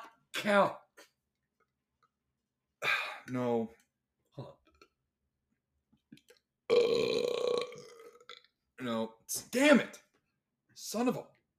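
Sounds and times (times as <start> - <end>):
speech: 0.4 - 0.8, 2.8 - 3.8, 4.4 - 4.6, 8.8 - 10.0, 10.8 - 11.5
loud raspy human burp: 6.7 - 8.5.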